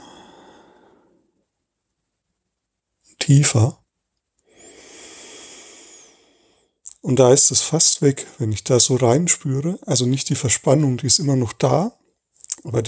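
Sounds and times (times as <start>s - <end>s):
deep heavy breathing: 0.0s - 1.2s, 4.5s - 6.6s
speech: 3.2s - 3.8s, 7.0s - 12.0s, 12.6s - 12.8s.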